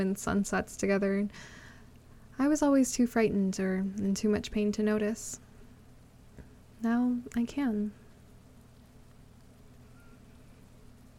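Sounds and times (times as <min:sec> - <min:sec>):
speech: 0:00.0 - 0:01.6, 0:02.4 - 0:05.4, 0:06.8 - 0:08.0
steady rain falling: 0:05.4 - 0:11.1.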